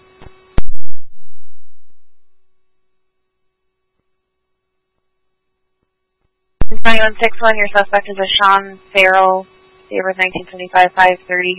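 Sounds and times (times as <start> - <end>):
radio static burst: 6.6 - 11.5
speech: 6.8 - 11.5.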